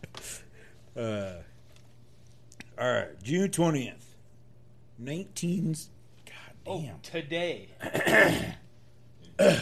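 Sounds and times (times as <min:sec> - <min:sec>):
speech: 0:01.0 - 0:01.5, 0:02.8 - 0:04.0, 0:05.0 - 0:06.0, 0:06.6 - 0:08.6, 0:09.4 - 0:09.6
person clearing throat: 0:07.8 - 0:08.6, 0:09.3 - 0:09.6.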